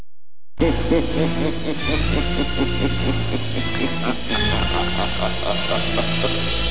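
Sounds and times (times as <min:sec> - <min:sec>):
cackle: 0:00.6 - 0:06.6.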